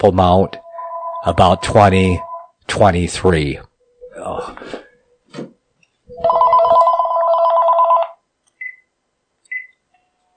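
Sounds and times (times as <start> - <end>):
speech: 0.0 - 0.6, 1.2 - 4.8
telephone ringing with a warbling electronic trill: 0.5 - 2.5, 6.2 - 8.2.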